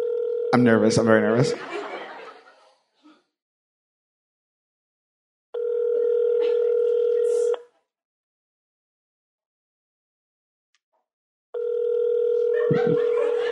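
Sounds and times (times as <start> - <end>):
electronic ringback tone of a dialed phone call: 0.0 - 0.6, 5.6 - 7.6, 11.6 - 13.5
speech: 0.5 - 1.9
soft chuckling: 6.4 - 6.9, 12.5 - 13.5.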